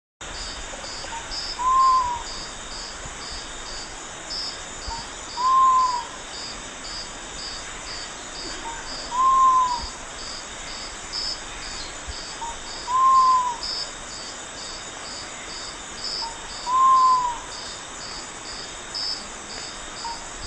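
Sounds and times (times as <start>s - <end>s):
sapphire quail-dove singing: 1.2s - 2.3s, 8.5s - 10.0s, 12.4s - 13.6s, 16.2s - 17.5s.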